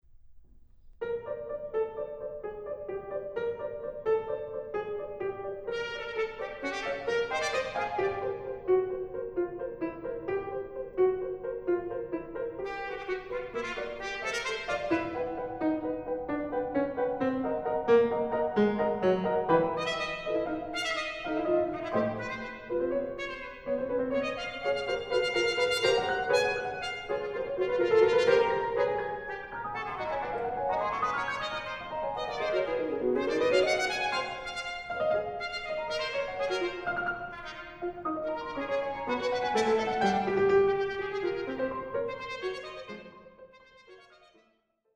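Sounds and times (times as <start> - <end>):
piano: 0.0 - 44.4
trumpet: 5.6 - 8.7, 12.6 - 16.2, 17.8 - 44.5.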